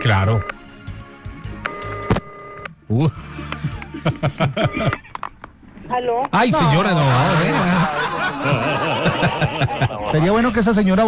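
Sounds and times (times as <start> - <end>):
buzzy telephone ringing tone on the line: 0.0 - 0.5, 1.7 - 2.7
speech: 0.0 - 0.6, 2.9 - 5.2, 5.9 - 11.0
faint noise: 0.0 - 11.0
laughter: 3.6 - 5.2, 6.6 - 10.6
person talking loudly: 6.4 - 7.8.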